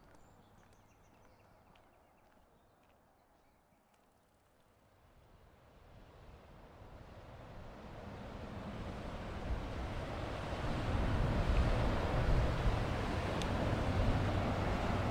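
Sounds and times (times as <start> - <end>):
river water flowing: 8.1 - 15.0.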